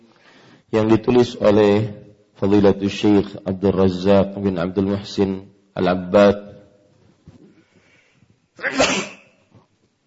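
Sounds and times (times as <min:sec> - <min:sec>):
speech: 0:00.7 - 0:06.4
loud sneeze during an Islamic study gathering: 0:08.6 - 0:09.5.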